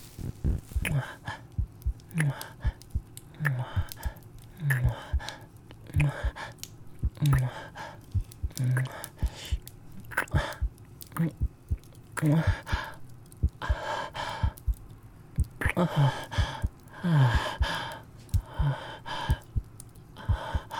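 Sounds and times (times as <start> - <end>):
fast heartbeat: 0.2 - 1.0, 1.6 - 5.3, 6.0 - 6.4, 7.0 - 7.4, 8.2 - 8.6, 9.2 - 14.8, 15.4 - 17.8, 18.4 - 19.7, 20.3 - 20.7
soft breathy whispers: 0.4 - 20.7
faint mouth sounds: 0.8 - 13.8, 15.4 - 19.6.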